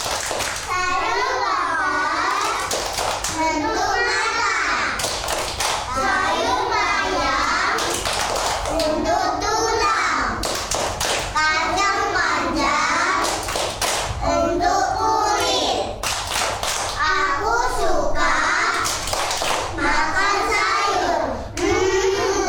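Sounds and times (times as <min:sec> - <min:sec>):
rhythmic hand claps: 0:00.0 - 0:01.5, 0:02.1 - 0:09.1, 0:10.3 - 0:11.4, 0:12.5 - 0:14.3, 0:15.3 - 0:17.1, 0:18.4 - 0:19.8
children chanting in unison: 0:00.0 - 0:22.4.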